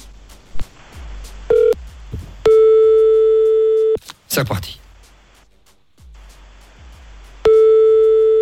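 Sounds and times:
telephone ringback tone during a call to a hotel reception: 2.5s - 4.0s, 7.5s - 8.3s
speech: 4.4s - 4.8s.

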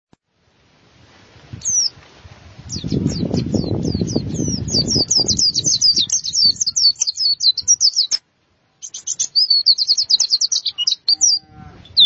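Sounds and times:
white-eye twittering: 1.6s - 1.9s, 2.7s - 8.2s, 8.8s - 12.0s.

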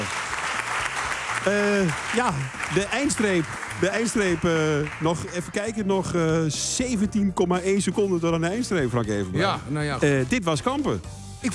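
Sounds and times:
audience applause at a live event honouring an Olympic champion: 0.0s - 6.1s
speech: 1.4s - 11.5s.

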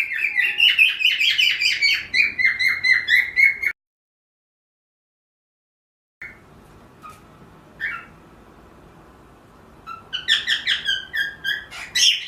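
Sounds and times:
pearl cockatiel chirping: 0.0s - 3.7s, 7.8s - 8.2s, 9.8s - 12.2s.

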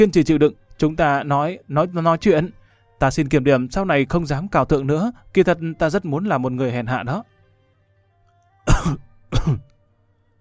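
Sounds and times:
speech: 0.0s - 7.3s, 8.6s - 9.7s
young woman coughing harshly and dryly: 8.7s - 9.7s.

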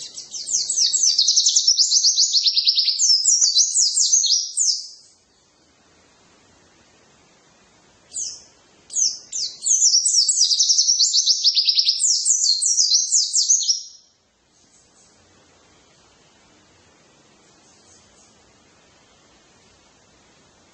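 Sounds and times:
white-eye twittering song: 0.0s - 5.7s, 8.1s - 15.3s, 17.4s - 18.6s.

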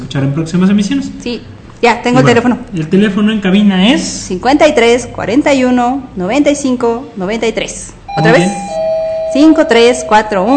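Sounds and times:
speech: 0.1s - 10.5s
doorbell chime sound effect jingle: 8.1s - 10.5s.

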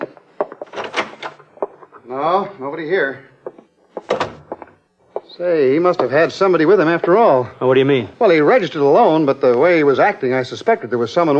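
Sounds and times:
wooden closet door being pulled open: 0.6s - 1.4s, 4.0s - 4.5s
speech: 2.0s - 3.3s, 5.4s - 11.3s.

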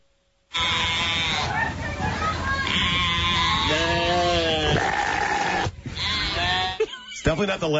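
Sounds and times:
sheep bleating: 0.5s - 1.6s, 2.6s - 6.9s
speech: 7.4s - 7.7s.

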